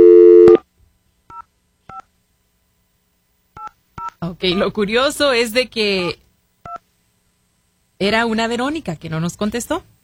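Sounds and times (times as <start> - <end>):
steady telephone tone: 0.0 - 0.6
speech: 4.2 - 6.2, 8.0 - 9.9.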